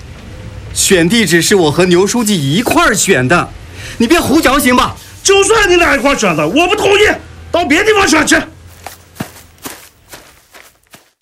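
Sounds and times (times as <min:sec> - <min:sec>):
speech: 0:00.8 - 0:08.5
footsteps walking away: 0:08.6 - 0:11.2.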